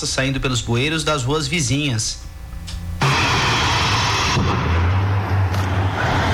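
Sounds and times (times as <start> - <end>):
speech: 0.0 - 2.3
heavy rumbling roar: 3.0 - 6.3
loud explosion with drums launched into air: 3.0 - 6.3.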